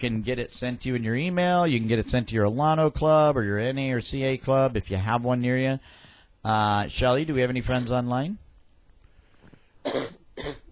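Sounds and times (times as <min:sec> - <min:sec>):
speech: 0:00.0 - 0:08.4, 0:09.8 - 0:10.6
coughing: 0:07.6 - 0:08.0, 0:09.8 - 0:10.7.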